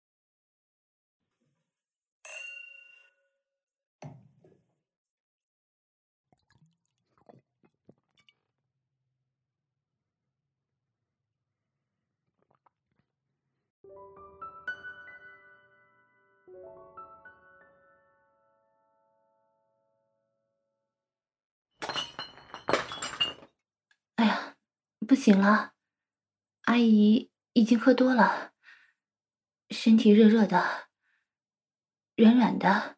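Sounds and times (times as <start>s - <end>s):
glasses clinking in a toast: 2.3s - 3.2s, 21.8s - 23.5s
liquid poured into glasses: 6.3s - 8.5s
speech: 25.1s - 25.7s, 26.7s - 28.5s, 29.7s - 30.9s, 32.2s - 32.9s.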